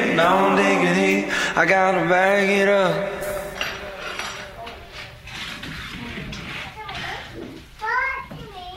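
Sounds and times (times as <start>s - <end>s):
speech: 0.2s - 3.2s
dishes clinking: 3.2s - 6.1s
children chattering: 5.9s - 8.7s.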